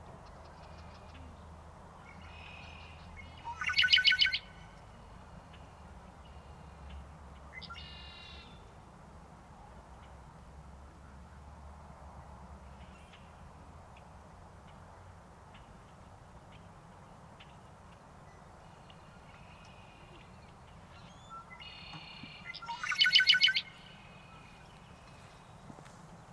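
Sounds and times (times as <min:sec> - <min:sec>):
Red-winged blackbird Agelaius phoeniceus calling: 0:02.1 - 0:04.7, 0:18.7 - 0:25.5.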